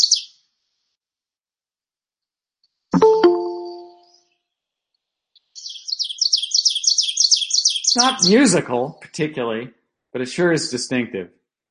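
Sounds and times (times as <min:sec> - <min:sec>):
short ringing bell-like tone: 0:03.0 - 0:04.0
ovenbird singing repeated two-note phrases: 0:03.0 - 0:04.2
speech: 0:08.0 - 0:11.4.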